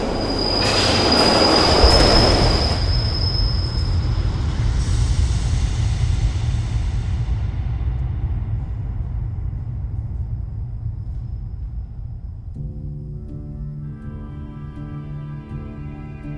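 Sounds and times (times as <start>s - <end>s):
piercing train wheel squeal: 0.0s - 4.8s
train rumbling on railway tracks: 0.0s - 13.0s.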